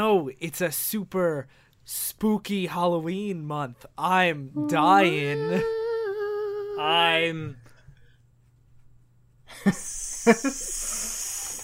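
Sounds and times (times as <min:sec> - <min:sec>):
speech: 0:00.0 - 0:05.8, 0:06.8 - 0:07.6, 0:09.5 - 0:11.0
voice imitating a snake's hiss: 0:09.6 - 0:11.6.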